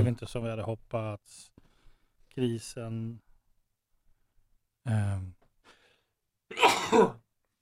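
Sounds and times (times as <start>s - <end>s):
speech: 0.0s - 1.6s, 2.4s - 3.3s, 4.8s - 5.4s, 6.5s - 7.2s
person sneezing from pollen: 6.5s - 7.2s.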